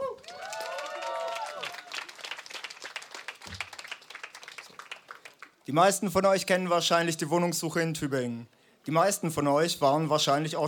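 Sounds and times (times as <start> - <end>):
people whooping and cheering: 0.0 - 2.4
crowd applauding: 0.0 - 5.6
speech: 5.7 - 10.6.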